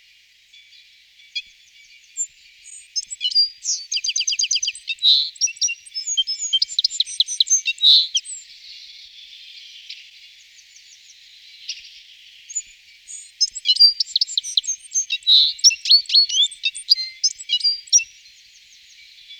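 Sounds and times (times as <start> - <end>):
citril finch singing: 2.7 - 8.4, 12.5 - 18.1.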